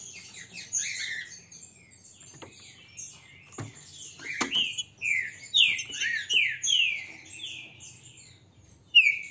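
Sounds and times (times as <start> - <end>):
green-winged saltator singing strongly with slurred whistled phrases: 4.2 - 7.6, 8.9 - 9.2.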